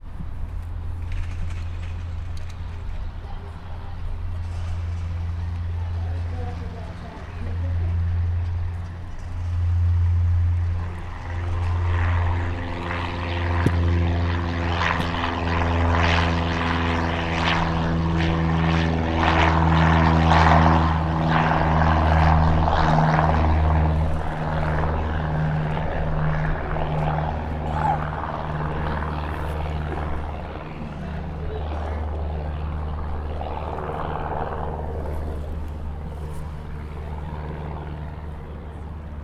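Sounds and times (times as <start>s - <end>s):
single-engine plane flying away to the right at an airfield: 0.0s - 39.2s.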